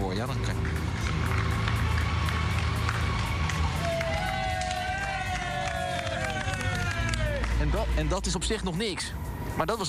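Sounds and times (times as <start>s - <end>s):
street crowd in a shopping street in Dongen clapping and applauding: 0.2s - 8.0s
people cheering and shouting: 1.3s - 8.2s
speech: 7.7s - 9.8s.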